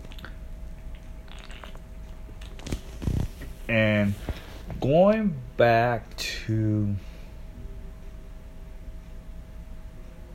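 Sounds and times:
person sipping a drink: 0.0s - 1.8s
wet mouth noises: 0.0s - 3.3s
low steady hum: 0.0s - 10.3s
gulping swallow: 1.3s - 1.8s
speech: 3.7s - 4.2s, 4.8s - 7.1s.

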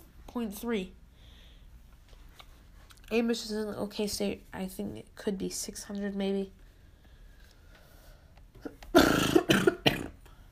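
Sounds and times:
speech: 0.4s - 1.0s, 3.1s - 6.6s
closed-mouth coughs: 8.9s - 10.1s.

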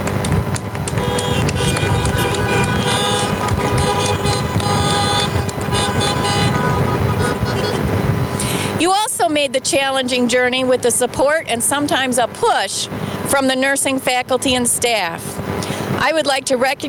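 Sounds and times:
idling car engines rumbling: 0.0s - 16.8s
many car horns honking together: 0.9s - 8.4s
speech: 9.6s - 15.4s, 16.0s - 16.8s.

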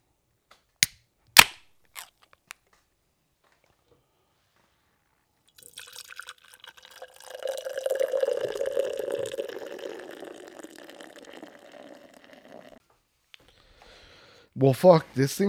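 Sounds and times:
sharp pops: 0.8s - 2.6s
beer glugging into a glass: 5.6s - 12.8s
speech: 14.6s - 15.4s.

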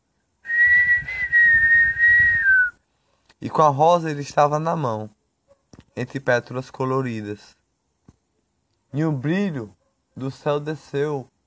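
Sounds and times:
person whistling an imitation of a great kiskadee call: 0.5s - 2.8s
speech: 3.4s - 5.2s, 6.0s - 7.6s, 8.9s - 11.3s.

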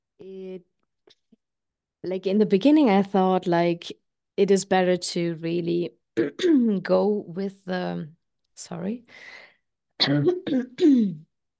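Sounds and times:
speech: 0.2s - 0.7s, 2.0s - 9.4s, 10.0s - 11.3s
person clearing throat: 10.0s - 11.3s.

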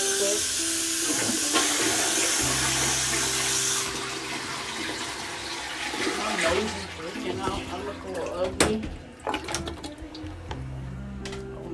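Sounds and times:
water gushing from a tap: 0.0s - 8.5s
tonal pipe hum: 0.0s - 11.7s.

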